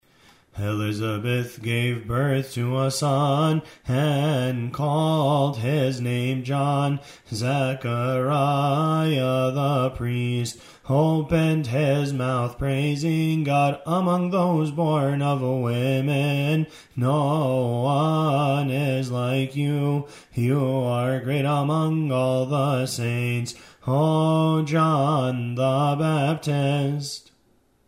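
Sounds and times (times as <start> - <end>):
gospel response singing of hymns: 0.6 - 27.3.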